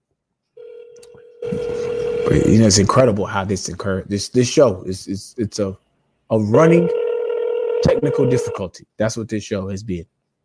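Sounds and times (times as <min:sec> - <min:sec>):
phone line tone of a call ringing out: 0:00.6 - 0:02.8, 0:06.7 - 0:08.6
speech: 0:02.3 - 0:07.0, 0:08.0 - 0:10.2.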